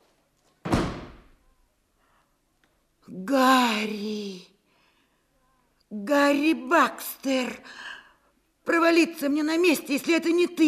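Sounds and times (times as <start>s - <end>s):
heavy bang against a door being forced: 0.6s - 1.3s
speech: 3.1s - 4.2s, 6.4s - 8.0s, 8.7s - 10.6s.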